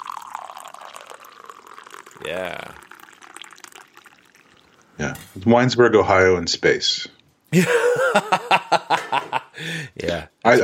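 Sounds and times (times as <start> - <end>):
coffee pouring in a steady stream: 0.0 - 5.4
speech: 2.2 - 2.8, 5.0 - 10.6
laughter: 7.5 - 10.6.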